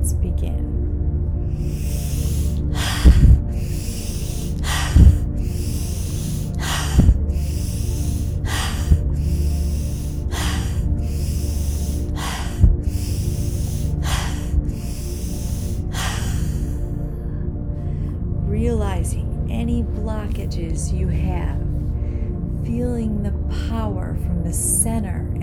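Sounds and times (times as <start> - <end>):
soft steady low drone: 0.0 - 24.9
deep breathing in through the nose and out through the mouth: 1.4 - 18.4.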